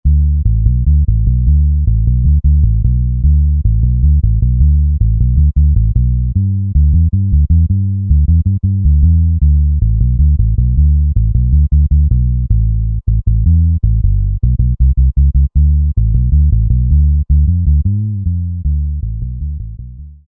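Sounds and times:
bass: 0.0 - 20.2.

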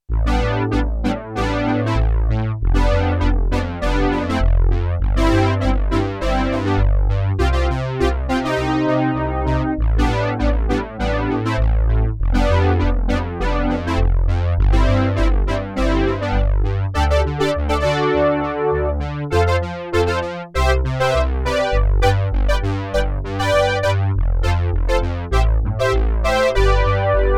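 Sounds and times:
Roland JX-8P poly brass synth: 0.2 - 27.3.

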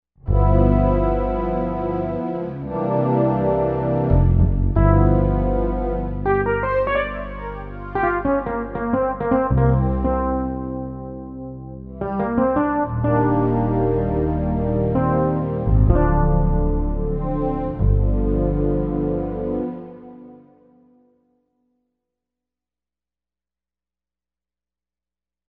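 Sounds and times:
bass suite: 0.2 - 20.3.

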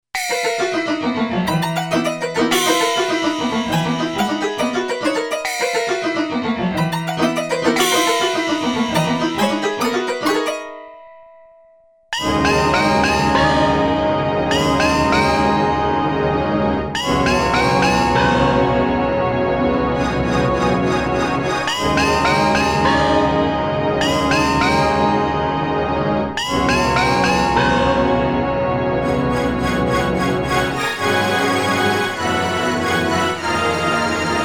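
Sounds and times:
unprepared piano: 0.2 - 34.4.

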